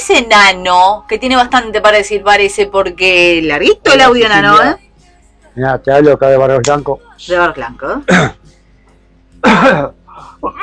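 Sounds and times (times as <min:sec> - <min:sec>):
speech: 0:00.1 - 0:04.8, 0:05.6 - 0:08.4, 0:09.4 - 0:10.6
person coughing: 0:08.1 - 0:08.4, 0:09.4 - 0:10.6.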